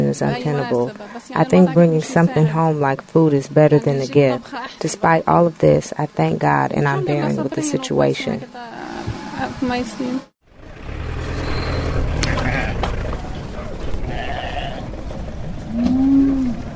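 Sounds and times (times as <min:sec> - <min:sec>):
busy outdoor street market din in Gaza: 0:00.0 - 0:16.7
speech: 0:00.1 - 0:10.3
sheep bleating at a street market in Gaza: 0:12.2 - 0:13.0, 0:14.0 - 0:14.8.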